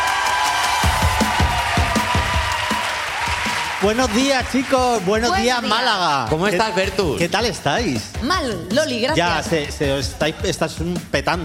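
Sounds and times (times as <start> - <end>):
live audience applauding and cheering: 0.0 - 7.9
rhythmic low thumps: 0.8 - 11.4
speech: 3.8 - 11.4.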